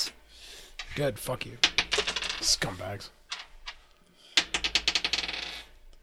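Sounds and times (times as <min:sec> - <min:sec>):
speech: 0:01.0 - 0:01.7, 0:02.4 - 0:03.2
dice clattering onto a hard table during a tabletop role-playing game: 0:01.6 - 0:02.6, 0:04.4 - 0:05.8.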